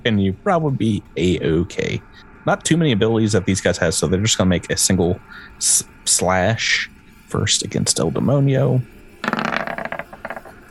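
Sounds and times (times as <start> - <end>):
speech: 0.0 - 9.4
dice rolling across a hard tabletop: 9.2 - 10.6.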